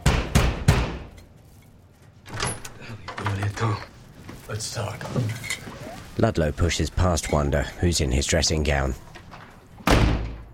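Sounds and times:
pounding on the door of a plush house at night: 0.0s - 1.1s
shuffling: 1.3s - 9.8s
speech: 3.5s - 3.9s, 4.5s - 9.1s.

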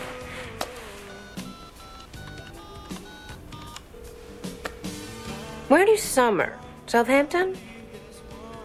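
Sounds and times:
telephone keypad dialing tones: 1.1s - 5.0s
sharp clicks: 2.0s - 3.9s
speech: 5.7s - 7.7s.

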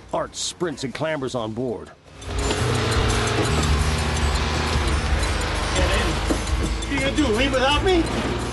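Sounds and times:
speech: 0.1s - 2.4s, 3.4s - 3.7s, 7.0s - 8.5s
bus engine roaring as the bus drives off: 2.1s - 8.5s.

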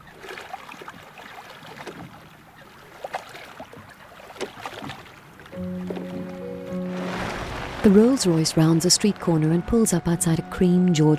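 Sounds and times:
boat moving through water with splashing and lapping: 0.0s - 11.1s
sustained tonal hum: 5.5s - 11.1s
speech: 7.8s - 11.1s.

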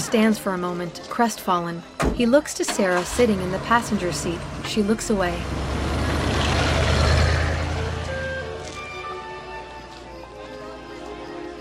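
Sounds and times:
speech: 0.1s - 5.6s
vintage luxury limousine engine rumble on a wet winding road: 3.0s - 8.9s.

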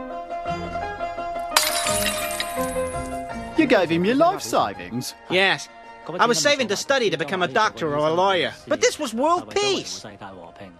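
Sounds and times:
music: 0.0s - 10.7s
young boy smashing open a piggy bank: 1.5s - 3.2s
scattering ringing bits of piggy bank jingling: 1.6s - 3.2s
speech: 3.7s - 10.4s.

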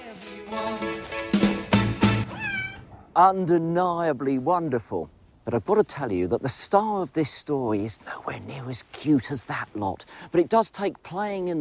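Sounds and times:
speech: 0.5s - 0.9s, 3.2s - 11.5s
cat meowing in winter snow: 2.2s - 3.1s.

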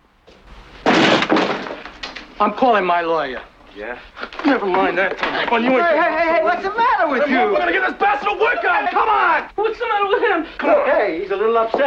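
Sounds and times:
shuffling: 0.3s - 11.8s
apartment door being kicked open: 0.4s - 2.5s
rough clatter: 0.5s - 2.5s
speech: 2.4s - 11.8s.

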